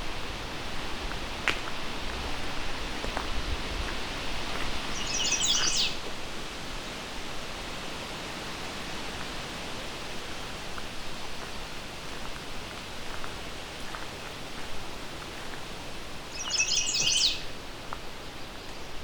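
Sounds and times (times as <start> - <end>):
steady hiss of wind or rushing water: 0.0 - 19.0
American redstart singing: 4.9 - 6.0, 16.3 - 17.5.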